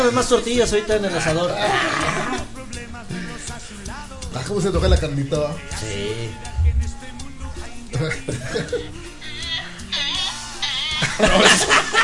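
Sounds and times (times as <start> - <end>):
speech: 0.1 - 2.5, 4.4 - 6.5, 8.0 - 9.1, 11.2 - 12.0
donkey braying at an agricultural fair: 1.5 - 3.4, 5.6 - 11.6
people chuckling and talking: 6.6 - 9.8, 10.8 - 12.0.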